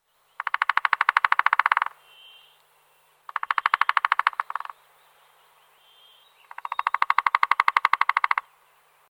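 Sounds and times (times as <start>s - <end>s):
three-toed woodpecker: 0.4s - 2.0s, 3.3s - 4.8s, 6.4s - 8.6s.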